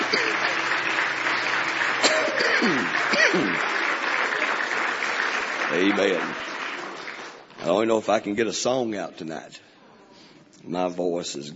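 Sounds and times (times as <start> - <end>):
congregation hand clapping in praise at a church service: 0.0 - 8.0
speech: 5.7 - 6.5, 7.7 - 9.7, 10.6 - 11.5.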